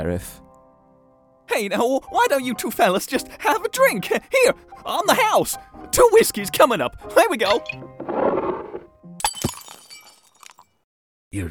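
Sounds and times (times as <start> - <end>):
speech: 0.0 - 0.4, 1.5 - 8.2
drinking glass shattering with tinkling shards: 9.2 - 10.8.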